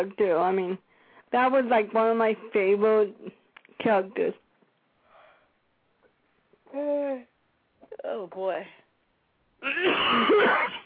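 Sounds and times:
speech: 0.0 - 4.4, 6.7 - 7.3, 8.0 - 8.8, 9.6 - 10.8
cough and sneeze from throat irritation: 9.6 - 10.8.

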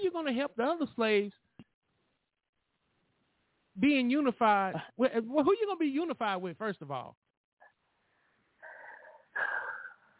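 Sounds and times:
speech: 0.2 - 1.4, 3.8 - 7.3
heavy breathing with loud airy exhales: 7.6 - 10.1.

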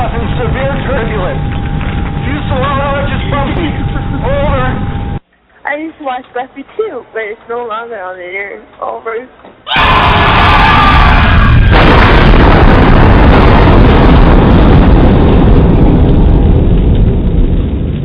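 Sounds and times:
huge explosion with a fireball and rumbling roar: 0.0 - 5.2, 9.7 - 18.0
speech: 6.0 - 11.4.

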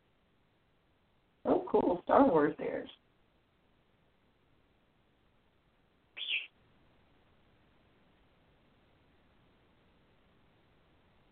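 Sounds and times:
speech: 1.7 - 3.0
pet bird giving a short shrill call: 6.2 - 6.5.

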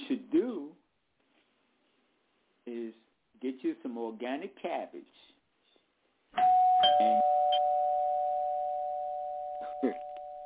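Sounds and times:
speech: 3.8 - 5.3, 6.3 - 7.4
doorbell ding-dong chime: 6.4 - 10.4.

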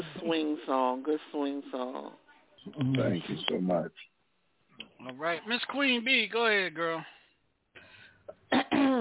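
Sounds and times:
speech: 0.3 - 4.1, 4.8 - 7.2
person clearing throat: 8.4 - 8.9.

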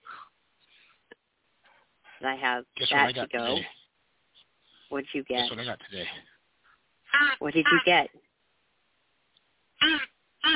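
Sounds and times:
speech: 2.2 - 3.8, 4.9 - 6.3, 7.1 - 8.2
crow call blown with squeaky duck-like quack: 7.1 - 8.0, 9.8 - 10.5.

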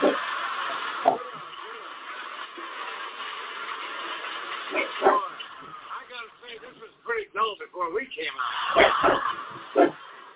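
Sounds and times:
laughter: 0.0 - 3.0, 7.9 - 10.3
short sharp dog barks: 4.7 - 5.4, 8.8 - 10.0
speech: 7.8 - 9.9.

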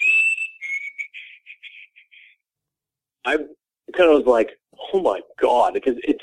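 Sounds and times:
person whistling in imitation of a chickadee call: 0.0 - 1.9
speech: 3.3 - 6.2.

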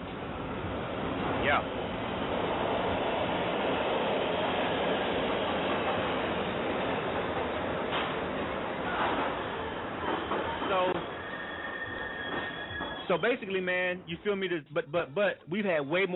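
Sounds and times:
subway train rumbling: 0.0 - 14.1
speech: 1.5 - 1.8, 13.1 - 16.1
subway train metallic wheel squeals: 8.9 - 13.4.

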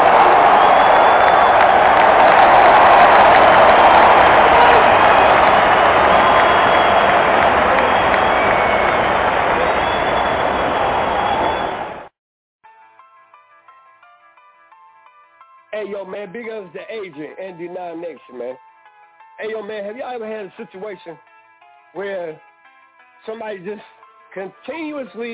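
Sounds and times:
loud dense crowd cheering and applauding: 0.0 - 12.1
speech: 16.1 - 18.7, 19.4 - 21.3, 21.9 - 22.5, 23.2 - 25.3.

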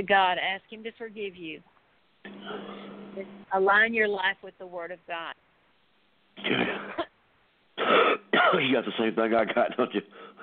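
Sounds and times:
speech: 0.0 - 5.5, 6.4 - 7.0, 7.8 - 10.4
person coughing: 6.4 - 7.1, 7.8 - 8.8
raspy throat clearing: 6.4 - 7.1, 7.8 - 8.8.

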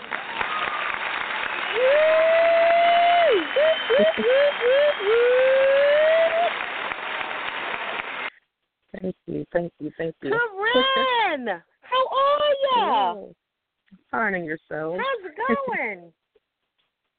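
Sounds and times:
audience clapping to welcome a guest: 0.0 - 8.3
laughter: 3.3 - 6.4, 10.6 - 11.3
speech: 4.0 - 5.2, 9.0 - 11.7, 12.3 - 16.2.

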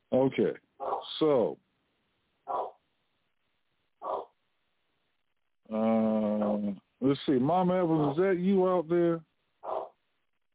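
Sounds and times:
speech: 0.1 - 0.6, 1.2 - 1.6, 6.6 - 9.3
dog barking: 0.8 - 1.1, 2.5 - 2.8, 4.0 - 4.4, 9.6 - 10.0.

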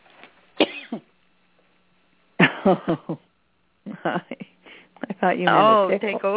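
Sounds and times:
person coughing: 0.6 - 1.1, 2.4 - 3.2
speech: 2.6 - 3.3, 4.0 - 4.4, 5.2 - 6.3.

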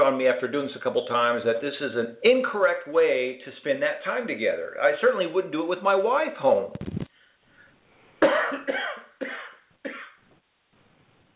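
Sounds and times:
speech: 0.3 - 7.0
harsh coughs: 8.2 - 10.2.

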